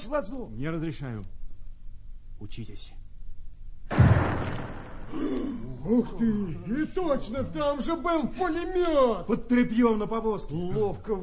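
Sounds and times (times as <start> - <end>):
speech: 0.0 - 1.4, 2.4 - 3.0, 3.9 - 11.2
hand grenade explosion sound effect: 3.9 - 5.4.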